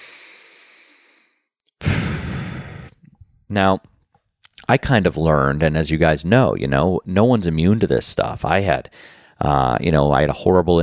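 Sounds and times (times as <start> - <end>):
deep breathing in through the nose and out through the mouth: 0.0 - 3.2, 8.9 - 9.4
speech: 3.5 - 3.9, 4.7 - 10.8.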